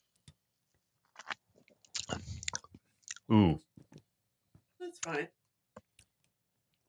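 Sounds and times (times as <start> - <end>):
wet mouth clicks: 1.2 - 3.3
speech: 3.3 - 3.7, 4.9 - 5.4.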